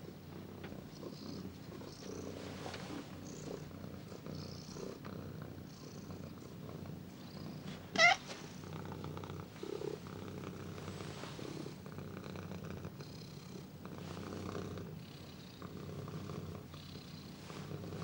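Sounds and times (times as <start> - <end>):
domestic cat purring: 0.0 - 18.0
domestic cat squealing: 8.0 - 8.2.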